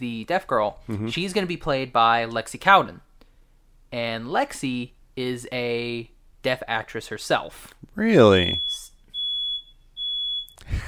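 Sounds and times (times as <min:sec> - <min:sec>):
speech: 0:00.0 - 0:03.1, 0:03.9 - 0:08.9
fire alarm beeping while something burns: 0:08.2 - 0:10.6.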